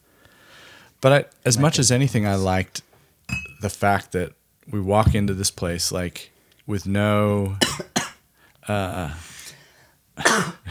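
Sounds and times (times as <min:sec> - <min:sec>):
speech: 0:01.0 - 0:02.9, 0:03.6 - 0:07.8, 0:08.7 - 0:09.3
person coughing after swallowing whiskey wrong: 0:07.6 - 0:08.2, 0:10.2 - 0:10.6.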